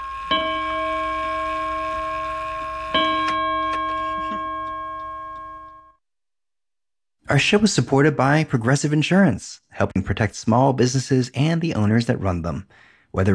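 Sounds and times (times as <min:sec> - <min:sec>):
clock chiming with bell-like tones: 0:00.0 - 0:06.0
speech: 0:07.3 - 0:13.3.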